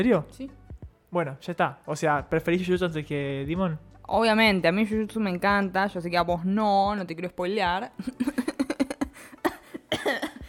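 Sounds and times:
speech: 0:00.0 - 0:08.5
person coughing: 0:09.4 - 0:10.4.

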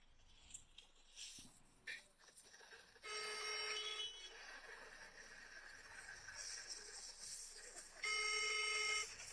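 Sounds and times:
faint noise: 0:00.0 - 0:09.3
phone ringing in buzzing trills: 0:03.1 - 0:04.1, 0:08.0 - 0:09.2.

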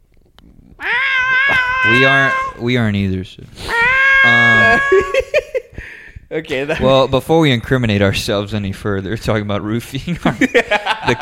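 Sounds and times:
cat meowing unhappily: 0:00.8 - 0:02.7, 0:03.6 - 0:05.2
speech: 0:01.9 - 0:03.6, 0:04.2 - 0:05.6, 0:06.3 - 0:11.1
laughter: 0:04.2 - 0:05.7, 0:10.2 - 0:11.1.

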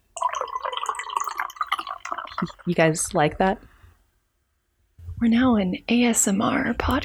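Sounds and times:
mead being poured into a glass: 0:00.1 - 0:02.8
speech: 0:02.4 - 0:03.7, 0:05.2 - 0:07.0.

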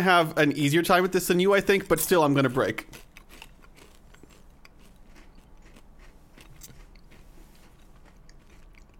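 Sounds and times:
speech: 0:00.0 - 0:03.1
crunching and chewing of crab-flavored potato chips: 0:01.8 - 0:08.9.

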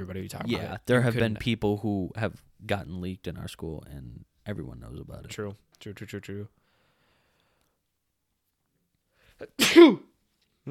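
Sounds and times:
speech: 0:00.0 - 0:06.6, 0:09.4 - 0:10.6
sneeze: 0:09.4 - 0:10.1.

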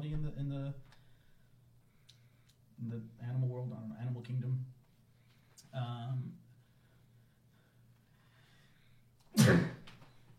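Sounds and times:
speech: 0:02.8 - 0:04.8, 0:05.7 - 0:06.4
sneeze: 0:09.3 - 0:09.9.

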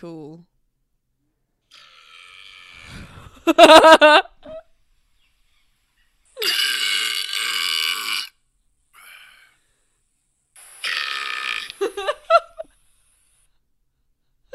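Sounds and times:
speech: 0:00.0 - 0:00.5, 0:03.5 - 0:04.6
very loud long raspy burps from an Australian man: 0:01.7 - 0:03.2, 0:06.4 - 0:08.4, 0:10.8 - 0:11.9.

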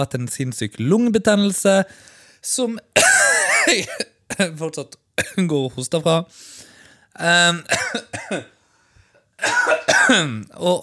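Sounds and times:
speech: 0:00.0 - 0:02.8, 0:03.7 - 0:08.6, 0:09.4 - 0:10.8
person coughing harshly: 0:03.0 - 0:04.6, 0:07.7 - 0:08.6, 0:09.4 - 0:10.4.

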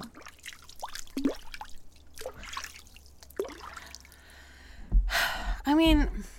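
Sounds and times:
sipping water: 0:00.0 - 0:04.5
speech: 0:05.7 - 0:06.2.

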